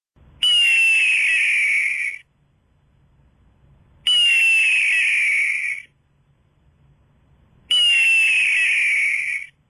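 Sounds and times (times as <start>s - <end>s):
hawk calling: 0.4s - 2.2s, 4.1s - 5.9s, 7.7s - 9.5s.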